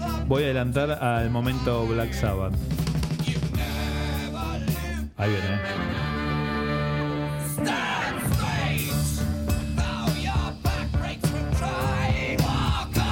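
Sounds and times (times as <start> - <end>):
loud rock song with shouted doubled lead vocal, distorted guitars and drums: 0.0 - 6.3, 6.9 - 13.1
speech: 0.3 - 2.8, 5.2 - 6.0.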